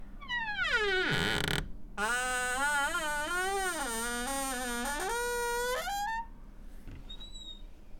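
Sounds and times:
low door squeak: 0.2s - 6.3s, 6.9s - 7.7s.

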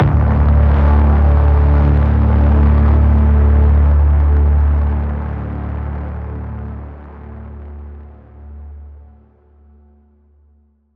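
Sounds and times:
trailer braam in D: 0.0s - 4.9s.

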